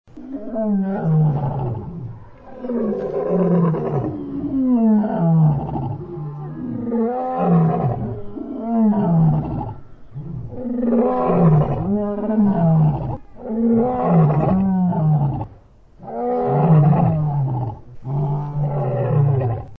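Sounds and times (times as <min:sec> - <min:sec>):
zoo ambience: 0:00.1 - 0:19.7.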